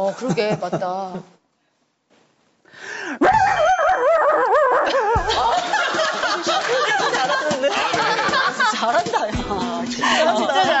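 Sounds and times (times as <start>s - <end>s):
speech: 0.0s - 1.4s
voice imitating a dog howling: 3.2s - 5.2s
laughter: 3.5s - 10.7s.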